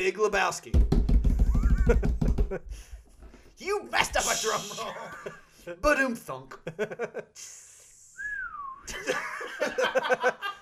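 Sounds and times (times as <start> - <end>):
speech: 0.0 - 1.0, 1.9 - 3.0, 3.6 - 7.7, 8.9 - 10.6
laughter: 1.5 - 2.6, 4.2 - 5.5, 6.7 - 7.4, 8.9 - 10.6
person whistling a slide-whistle imitation: 8.1 - 8.9.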